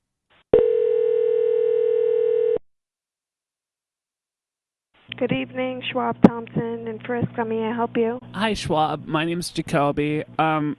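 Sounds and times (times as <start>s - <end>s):
continuous mid-pitched telephone beep: 0.6s - 2.6s
speech: 5.2s - 10.7s.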